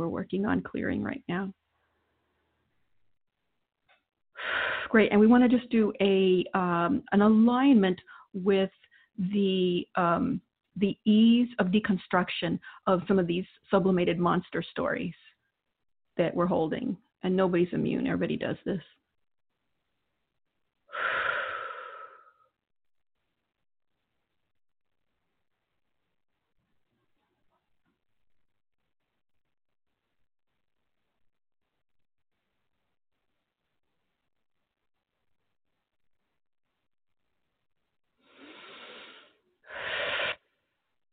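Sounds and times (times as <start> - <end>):
speech: 0.2 - 1.6, 4.4 - 15.3, 16.2 - 19.0
deep breathing during a healing session: 4.4 - 4.9, 20.9 - 22.5, 38.2 - 40.5.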